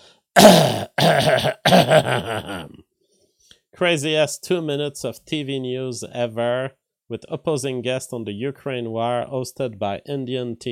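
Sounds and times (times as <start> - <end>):
loud rough throaty deliberate coughs: 0.4 - 2.8
speech: 1.3 - 2.8, 3.8 - 10.7.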